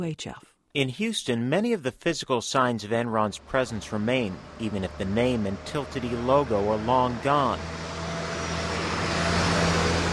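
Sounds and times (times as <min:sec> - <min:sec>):
speech: 0:00.0 - 0:07.8
cars passing on a downtown Houston street: 0:02.9 - 0:10.1.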